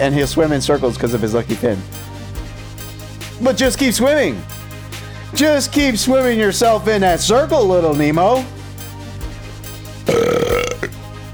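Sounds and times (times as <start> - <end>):
speech: 0.0 - 2.0, 3.4 - 4.6, 5.3 - 8.6
loud drawn-out burp: 10.1 - 10.9.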